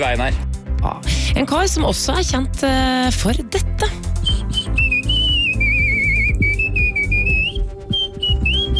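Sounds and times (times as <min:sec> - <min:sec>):
speech: 0:00.0 - 0:04.0
steady low musical accompaniment: 0:00.0 - 0:08.7
person whistling a lively tune with vibrato: 0:04.2 - 0:08.7.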